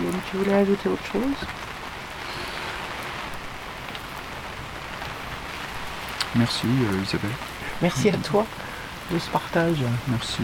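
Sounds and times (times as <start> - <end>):
rain pattering outside a tipi: 0.0 - 10.4
speech: 0.3 - 1.7, 6.3 - 10.4.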